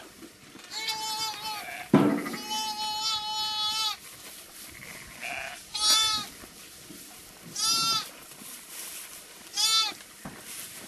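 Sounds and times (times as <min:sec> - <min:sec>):
lamb with its mother crying: 0:00.7 - 0:04.0, 0:04.9 - 0:06.3, 0:07.6 - 0:08.1
sheep bleating: 0:00.7 - 0:04.0, 0:04.8 - 0:06.3, 0:07.6 - 0:08.1.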